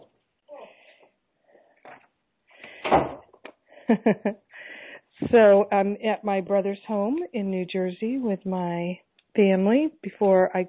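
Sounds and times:
door in a family home in New Jersey pushed shut by a nephew: 2.8 - 3.3
speech: 3.9 - 4.4, 5.2 - 10.6.

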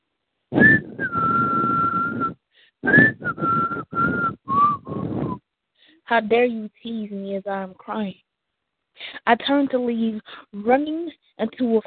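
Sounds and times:
person whistling a short wavering tune: 0.6 - 5.4
speech: 6.1 - 8.3, 9.0 - 11.8.

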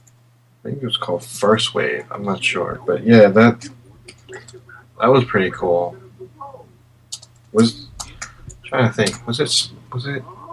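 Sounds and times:
steady low electrical hum: 0.0 - 10.5
speech: 0.6 - 6.0, 7.5 - 7.8, 8.7 - 10.4
typing on a computer keyboard: 7.1 - 8.3.

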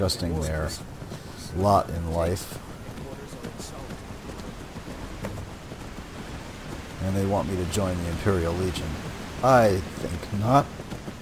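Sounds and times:
speech: 0.0 - 2.7, 7.0 - 10.8
heavy rain in a stormy downpour: 0.0 - 11.2
sharp crackles: 0.0 - 11.2
wind-like rushing: 0.0 - 11.2.

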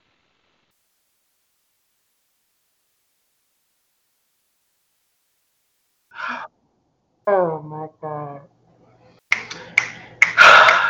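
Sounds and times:
crisp finger snaps: 9.3 - 10.8.

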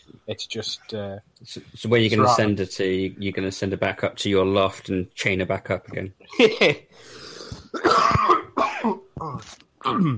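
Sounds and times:
speech: 0.3 - 7.2, 9.4 - 10.1
person clearing throat: 7.7 - 10.1
person coughing: 7.7 - 10.1.

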